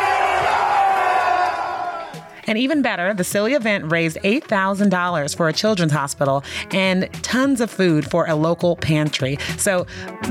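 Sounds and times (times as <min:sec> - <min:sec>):
large crowd cheering and yelling: 0:00.0 - 0:02.4
speech: 0:02.5 - 0:10.2.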